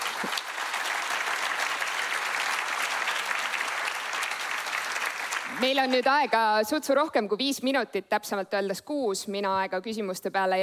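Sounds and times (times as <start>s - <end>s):
audience applause: 0.0s - 6.0s
speech: 5.6s - 10.6s.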